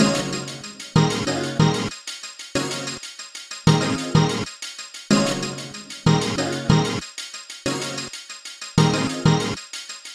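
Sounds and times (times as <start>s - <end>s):
synth stem: 0.0s - 1.9s, 3.7s - 4.5s, 5.1s - 7.0s, 8.8s - 9.6s.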